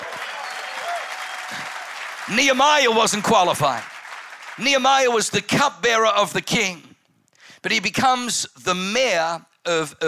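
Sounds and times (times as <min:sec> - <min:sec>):
crowd clapping: 0:00.0 - 0:05.4
speech: 0:01.5 - 0:03.9, 0:04.6 - 0:06.9, 0:07.6 - 0:10.0.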